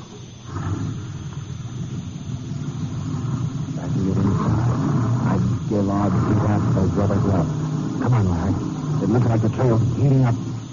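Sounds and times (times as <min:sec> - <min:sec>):
small truck engine running at a warehouse side entrance: 0:00.0 - 0:10.7
speech: 0:06.3 - 0:07.6, 0:08.3 - 0:10.5.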